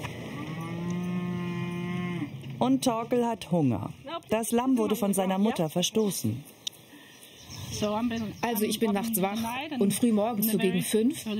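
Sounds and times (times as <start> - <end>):
Highland cattle mooing: 0.2 - 2.4
speech: 2.6 - 6.6, 7.7 - 11.3.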